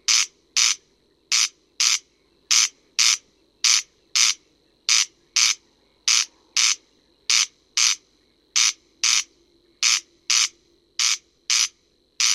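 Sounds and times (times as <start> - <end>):
corn crake calling crex-crex in France: 0.0 - 8.0, 8.6 - 12.3
faint low hum: 0.0 - 12.3.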